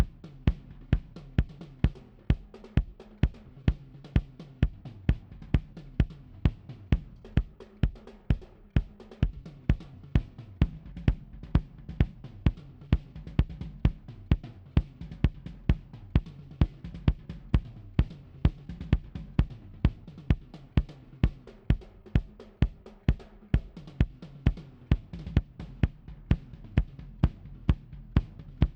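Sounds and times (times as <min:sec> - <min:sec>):
kick drum: 0:00.0 - 0:28.7.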